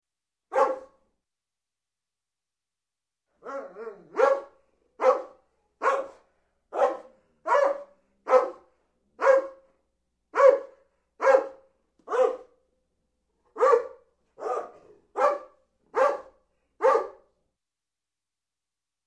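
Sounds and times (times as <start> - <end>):
Doberman barking gruff single barks: 0.5 - 1.0, 3.4 - 9.7, 10.3 - 12.6, 13.5 - 17.4.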